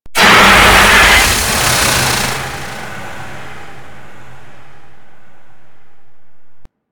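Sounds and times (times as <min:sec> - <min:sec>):
golem death sound: 0:00.2 - 0:04.9.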